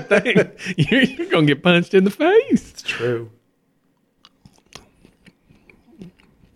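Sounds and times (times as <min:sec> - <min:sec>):
laughter: 0:00.0 - 0:01.5
speech: 0:00.0 - 0:03.4
crunchy chewing of candy: 0:04.2 - 0:06.5.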